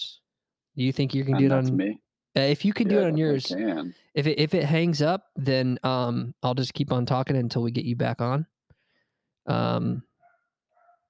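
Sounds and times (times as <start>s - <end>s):
speech: 0.8s - 8.5s, 9.5s - 10.1s
female dog barking: 10.2s - 11.0s.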